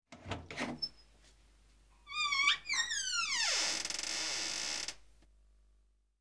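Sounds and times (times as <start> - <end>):
door creaking open: 2.1 - 5.0.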